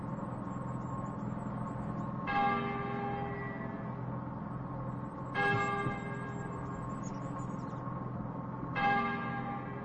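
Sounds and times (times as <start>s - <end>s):
low hum: 0.0s - 9.8s
church bell tolling: 2.3s - 3.3s, 5.4s - 6.3s, 8.8s - 9.8s.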